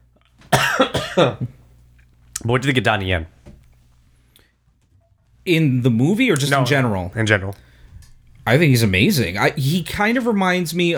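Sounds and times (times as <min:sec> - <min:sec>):
person coughing harshly: 0:00.5 - 0:01.5
speech: 0:00.8 - 0:01.6, 0:02.4 - 0:03.4, 0:05.5 - 0:07.7, 0:08.5 - 0:10.9.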